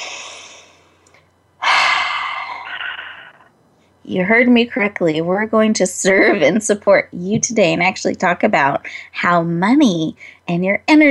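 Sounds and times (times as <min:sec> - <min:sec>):
deep breath in: 0:00.0 - 0:00.9, 0:01.6 - 0:03.5
speech: 0:04.1 - 0:11.1.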